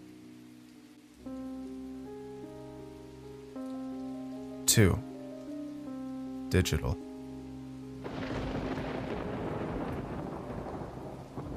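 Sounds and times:
rain-like hiss: 0.0 - 11.5
speech: 4.8 - 5.1, 6.5 - 7.0
deep rolling thunder rumbling: 8.0 - 11.5.

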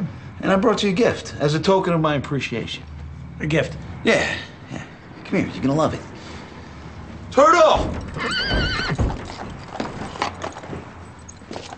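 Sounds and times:
speech: 0.4 - 6.1, 7.4 - 8.4
horse hooves clip-clopping and shuffling: 7.6 - 11.7
horse whinnying: 7.8 - 10.2.

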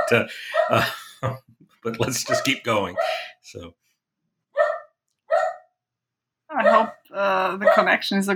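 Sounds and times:
dogs barking during a sudden thunderstorm: 0.0 - 1.1, 2.0 - 3.4, 4.6 - 5.7, 6.6 - 7.0, 7.6 - 8.0
laughter: 0.1 - 3.3
speech: 0.1 - 3.8, 6.6 - 8.3.

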